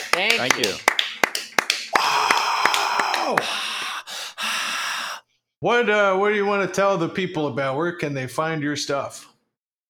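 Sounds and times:
small round of applause: 0:00.0 - 0:03.8
speech: 0:00.2 - 0:00.9, 0:03.3 - 0:03.6, 0:05.6 - 0:09.3.

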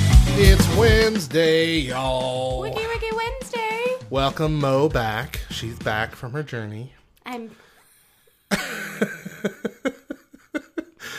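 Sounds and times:
speech: 0:00.4 - 0:07.6, 0:08.5 - 0:10.0
harsh loud coughs: 0:08.5 - 0:09.6
laughter: 0:08.5 - 0:11.1.

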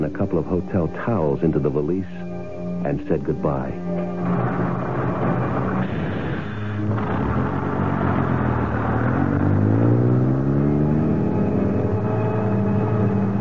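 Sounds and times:
speech: 0:00.0 - 0:04.5
large bus engine accelerating: 0:03.9 - 0:13.3.

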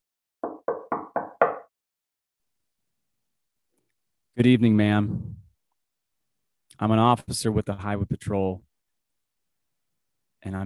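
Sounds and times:
knocking on a wooden front door of a house: 0:00.4 - 0:01.7
speech: 0:04.4 - 0:05.4, 0:06.8 - 0:08.7, 0:10.4 - 0:10.6.

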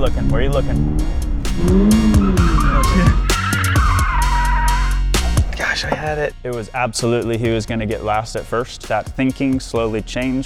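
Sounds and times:
speech: 0:00.0 - 0:03.3, 0:05.8 - 0:10.4
car engine rumbling on a racetrack: 0:00.0 - 0:06.3
car tires screeching as it skids and spins out on a racetrack: 0:00.2 - 0:05.1.

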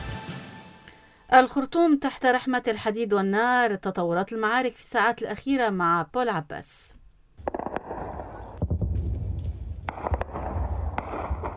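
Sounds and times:
speech: 0:01.3 - 0:07.0
bursts of gunfire from ongoing clashes in Khartoum Sudan: 0:07.4 - 0:08.8, 0:09.9 - 0:11.5
violent explosions from ongoing clashes in Khartoum Sudan: 0:07.4 - 0:11.5.

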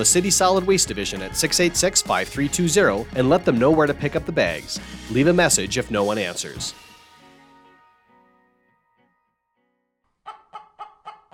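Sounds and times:
speech: 0:00.0 - 0:06.9
chickens clucking: 0:10.2 - 0:11.3.

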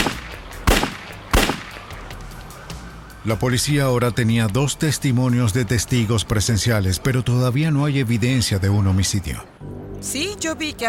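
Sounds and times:
sharp, loud gunshots with tails: 0:00.0 - 0:02.0
speech: 0:03.2 - 0:10.8.

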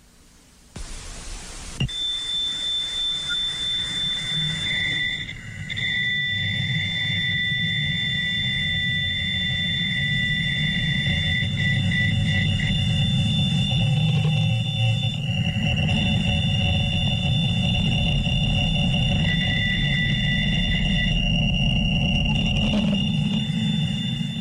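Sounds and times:
constant broad hiss: 0:00.8 - 0:02.6
radio signal from space with sustained high tones and shifting beeps: 0:01.8 - 0:24.3
low rumble: 0:09.6 - 0:24.3.

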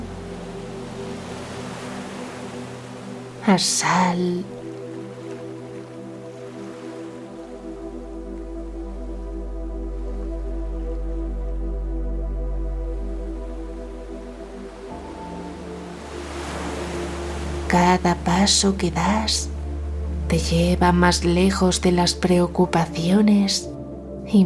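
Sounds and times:
ocean waves washing toward the shore: 0:00.0 - 0:11.5, 0:13.0 - 0:19.9
soft ambient music drone with sustained tones: 0:00.0 - 0:24.4
speech: 0:03.4 - 0:04.6, 0:18.0 - 0:19.5, 0:20.3 - 0:23.7, 0:24.3 - 0:24.4.

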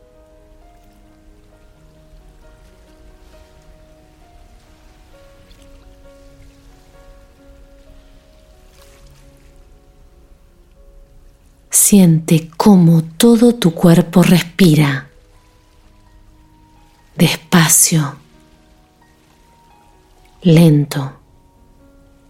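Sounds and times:
sea waves: 0:00.0 - 0:22.2
soft sustained musical tones: 0:00.0 - 0:22.2
speech: 0:11.9 - 0:15.1, 0:17.2 - 0:18.2, 0:20.4 - 0:21.2.

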